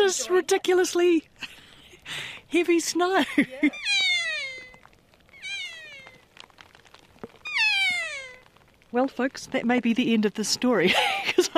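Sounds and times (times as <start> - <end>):
speech: 0.1 - 4.0, 8.9 - 11.5
kea giving harsh drawn-out cries during heavy snowfall: 3.6 - 6.3, 7.4 - 8.5
laughter: 10.9 - 11.5.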